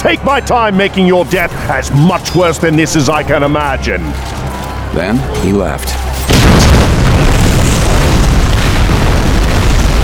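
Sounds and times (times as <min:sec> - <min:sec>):
speech: 0:00.0 - 0:06.2
loud explosion with deep heavy rumble: 0:06.3 - 0:10.0.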